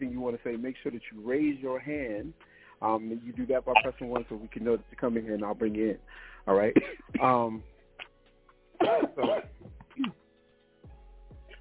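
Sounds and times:
speech: 0.0 - 7.7, 8.8 - 10.2
person coughing over a muffled phone-quality line: 6.6 - 7.5, 8.8 - 10.2.

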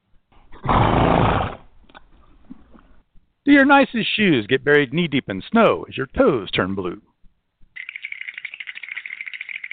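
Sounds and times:
horse snorting loudly: 0.5 - 1.7
speech: 3.5 - 7.1.

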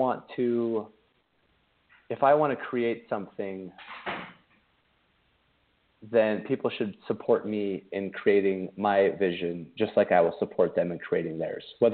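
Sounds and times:
speech: 0.0 - 1.0, 2.1 - 4.4, 6.0 - 11.9
door swinging shut with a soft thud: 3.8 - 4.5.

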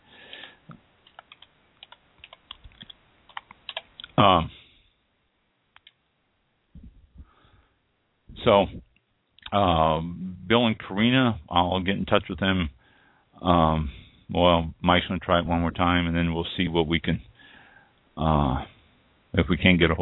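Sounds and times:
breathy bursts: 0.0 - 0.7, 17.3 - 18.0
typing on a computer keyboard: 1.0 - 3.9
speech: 4.2 - 4.6, 8.5 - 8.8, 9.5 - 12.8, 13.4 - 17.3, 18.2 - 18.7, 19.3 - 20.0.

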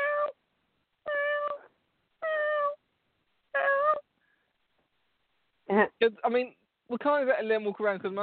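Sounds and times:
cat meowing: 0.0 - 0.4, 1.0 - 2.8, 3.6 - 4.1
speech: 5.8 - 8.2.

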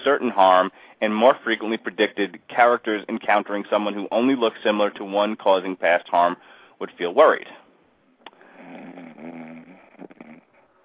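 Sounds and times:
speech: 0.0 - 7.6
man snoring: 8.4 - 10.6.

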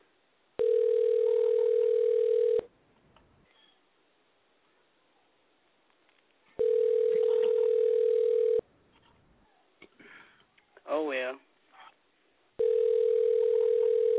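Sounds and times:
telephone ringback tone: 0.6 - 2.7, 6.6 - 8.6, 12.6 - 14.1.

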